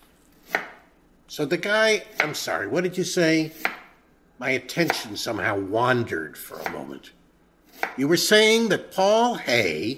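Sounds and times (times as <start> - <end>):
knife chopping vegetables on a cutting board: 0.4 - 0.8, 2.1 - 2.4, 3.5 - 4.0, 4.8 - 5.1, 6.6 - 6.9, 7.7 - 8.0
speech: 1.3 - 3.8, 4.4 - 7.2, 7.9 - 9.9.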